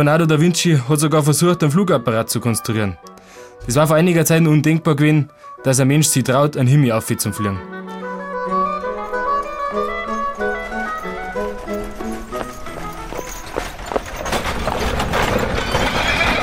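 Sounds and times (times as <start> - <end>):
speech: 0.0 - 8.0
horse whinnying in the royal stables: 8.4 - 16.4
horse hooves clattering and shuffling on a hard stable floor: 9.1 - 16.4.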